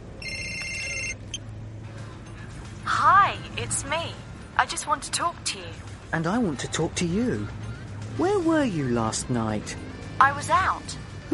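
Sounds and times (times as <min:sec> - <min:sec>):
phone ringing: 0:00.2 - 0:01.4
speech: 0:03.6 - 0:07.6, 0:08.2 - 0:11.3.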